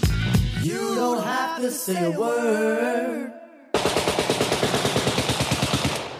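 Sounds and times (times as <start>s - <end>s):
speech: 0.6s - 4.2s
rapid machine-gun gunshot sound effects in a song: 3.8s - 6.1s.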